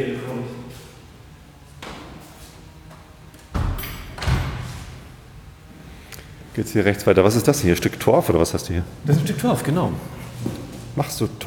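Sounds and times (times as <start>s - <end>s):
speech: 0.0s - 0.6s, 6.6s - 11.4s
door being shut quickly in a shop: 3.5s - 5.3s.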